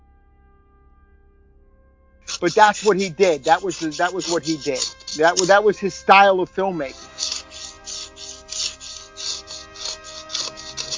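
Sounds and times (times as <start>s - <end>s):
cloth wiping dust off a computer: 2.3s - 10.9s
speech: 2.4s - 7.0s.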